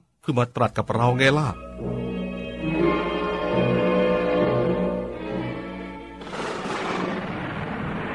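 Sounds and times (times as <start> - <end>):
speech: 0.2 - 2.0
sustained tonal music: 0.8 - 6.3
thunder crash over a mountain covered by thick cloud: 6.2 - 8.1.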